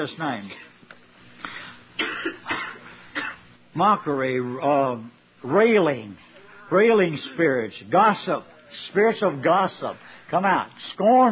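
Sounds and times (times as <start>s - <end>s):
speech: 0.0s - 0.7s, 3.8s - 11.2s
person coughing during a prayer meeting: 2.0s - 3.4s.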